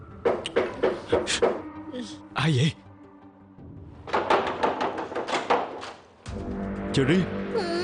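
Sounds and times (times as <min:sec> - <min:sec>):
rapid insistent knocking on a door: 0:00.2 - 0:01.6, 0:04.1 - 0:05.8
speech: 0:01.1 - 0:02.8, 0:07.0 - 0:07.7.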